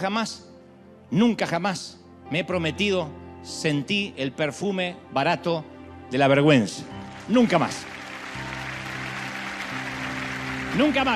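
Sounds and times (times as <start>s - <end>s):
speech: 0.0s - 0.5s, 1.1s - 8.0s, 10.8s - 11.1s
audience applauding: 7.0s - 11.1s.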